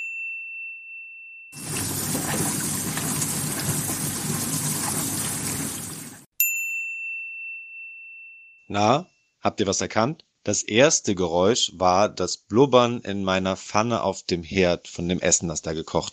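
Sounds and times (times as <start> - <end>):
dishwasher washing dishes at home: 1.6 - 6.3
speech: 8.7 - 16.1.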